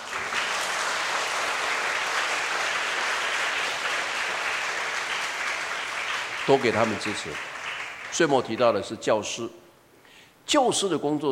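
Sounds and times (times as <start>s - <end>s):
crowd applauding: 0.0s - 8.8s
speech: 6.5s - 7.5s, 8.1s - 9.6s, 10.5s - 11.3s.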